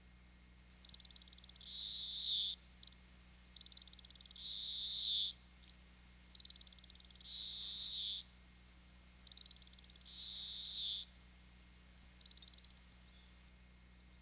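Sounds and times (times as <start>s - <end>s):
Magicicada cassini calling: 0.8s - 8.3s, 9.2s - 11.1s, 12.2s - 13.2s.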